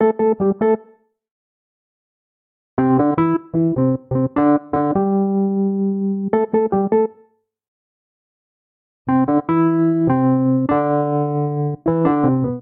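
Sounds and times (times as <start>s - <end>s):
dub phrase in A minor on electric keyboards: 2.8s - 7.1s, 9.1s - 12.6s.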